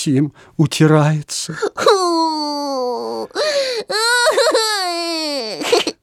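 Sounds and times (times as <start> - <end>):
speech: 0.0 - 5.8
person imitating a little girl's loud wailing cry: 1.5 - 6.0.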